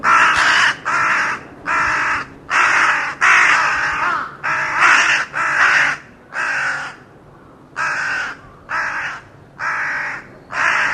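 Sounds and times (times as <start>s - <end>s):
bird cawing: 0.0s - 10.9s.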